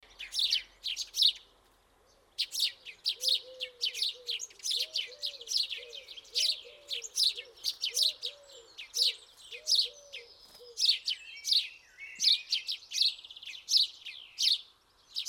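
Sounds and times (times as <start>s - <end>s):
house sparrow Passer domesticus chirping: 0.0s - 15.2s.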